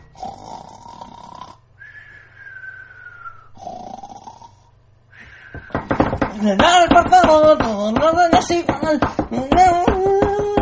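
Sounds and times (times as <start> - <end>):
baby snoring in a cradle: 0.1 - 1.6, 3.6 - 4.7
speech: 6.4 - 10.5.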